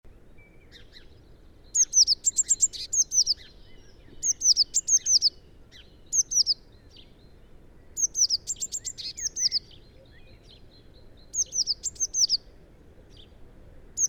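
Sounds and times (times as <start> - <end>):
low background noise: 0.1 - 14.0
Eurasian blue tit Cyanistes caeruleus singing trilled phrases: 0.6 - 7.1, 7.9 - 9.9, 11.2 - 12.5.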